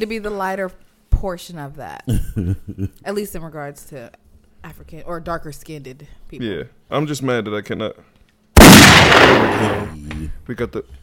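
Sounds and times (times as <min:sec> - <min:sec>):
speech: 0:00.0 - 0:08.2, 0:09.3 - 0:11.0
gunshot sound effect with long booming echo: 0:08.6 - 0:10.0.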